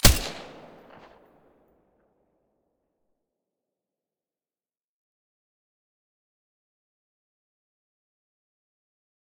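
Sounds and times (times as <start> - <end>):
MDR weapon with silencer firing: 0.0 - 1.2.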